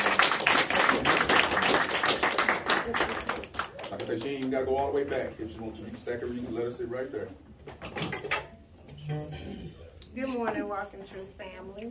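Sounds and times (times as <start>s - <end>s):
audience clapping hands in praise: 0.0s - 4.6s
speech: 4.1s - 8.5s, 9.1s - 9.5s, 10.1s - 11.8s.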